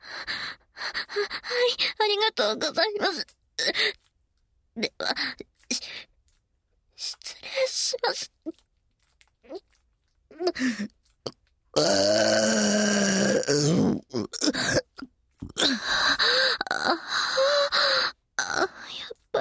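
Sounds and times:
brief breaths: 0:00.0 - 0:02.0, 0:03.6 - 0:04.1, 0:05.2 - 0:06.2, 0:10.6 - 0:11.0, 0:15.6 - 0:19.1
speech: 0:01.2 - 0:04.0, 0:04.8 - 0:05.5, 0:07.5 - 0:08.6, 0:10.4 - 0:11.0, 0:11.8 - 0:19.3
loud crude burping: 0:11.8 - 0:14.8.

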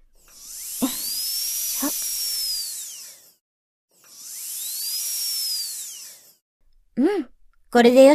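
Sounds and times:
high-pitched drill whirring while cutting a hole: 0:00.0 - 0:03.4, 0:04.0 - 0:06.4
speech: 0:07.7 - 0:08.1.

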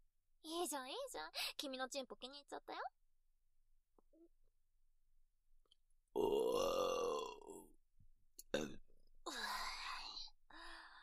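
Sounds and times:
speech: 0:00.6 - 0:03.0
woman burping, long low rasping belch: 0:06.2 - 0:07.6, 0:08.6 - 0:08.8
soft breathy vocal sounds: 0:06.2 - 0:07.7, 0:08.5 - 0:11.0.

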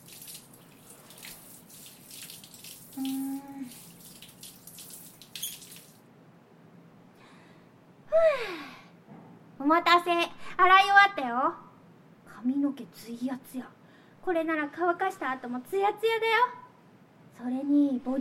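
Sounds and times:
water running from a tap in a bath while rinsing soap suds: 0:00.0 - 0:06.0
speech: 0:03.0 - 0:03.2, 0:09.7 - 0:11.6, 0:12.4 - 0:16.6, 0:17.4 - 0:18.1.

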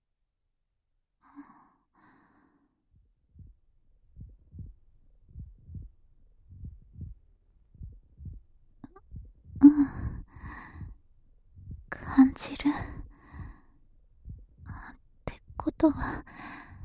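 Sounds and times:
louder breath: 0:01.2 - 0:02.8, 0:10.0 - 0:11.0, 0:13.1 - 0:13.8, 0:16.3 - 0:16.8
slow steady heartbeat in lub-dub pairs: 0:02.9 - 0:16.8.

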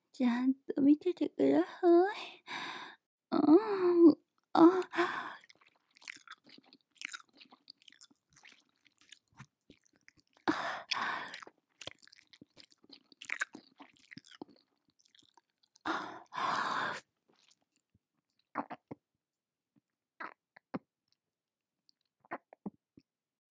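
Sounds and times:
speech: 0:00.2 - 0:02.7, 0:03.4 - 0:05.0
wet mouth chewing and squishing: 0:04.8 - 0:18.9.

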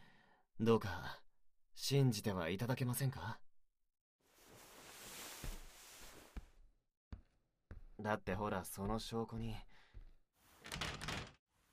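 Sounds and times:
speech: 0:00.6 - 0:01.2, 0:01.8 - 0:03.5, 0:08.0 - 0:09.7
locked exit door rattling against its lock: 0:10.6 - 0:11.4.

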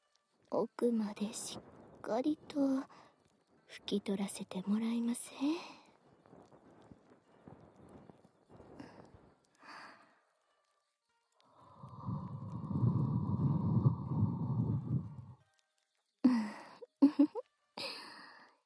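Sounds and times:
speech: 0:00.5 - 0:03.1, 0:03.7 - 0:05.8
long breath blown into the ear: 0:11.6 - 0:15.4.

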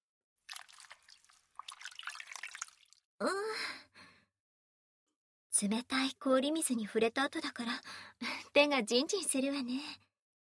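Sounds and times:
water trickling and dripping from a towel wrung out over a tub of hot water: 0:00.5 - 0:03.0
speech: 0:03.2 - 0:03.7, 0:05.6 - 0:10.0
person sighing: 0:03.2 - 0:03.8.

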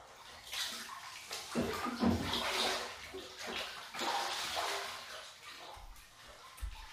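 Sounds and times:
water splashing and sloshing in a bath as a body is washed: 0:00.0 - 0:06.9.

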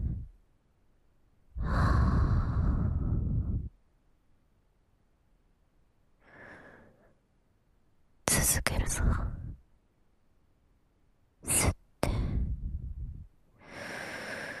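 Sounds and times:
person breathing deeply: 0:00.0 - 0:00.3, 0:01.6 - 0:03.8, 0:06.2 - 0:07.2, 0:12.0 - 0:14.5
speech: 0:08.6 - 0:09.4.

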